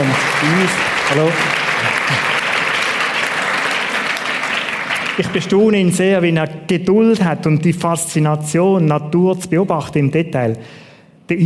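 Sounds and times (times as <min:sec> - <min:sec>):
room full of people applauding: 0:00.0 - 0:05.8
speech: 0:00.4 - 0:02.4, 0:05.2 - 0:11.4.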